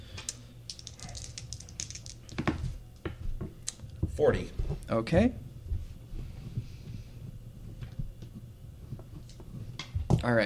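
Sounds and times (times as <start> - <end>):
dice rolling on a tabletop: 0.7 - 2.7
speech: 4.2 - 5.4, 10.3 - 10.4.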